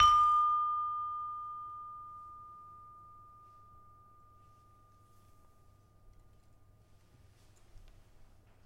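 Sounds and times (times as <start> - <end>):
peking gamelan: 0.0 - 2.2.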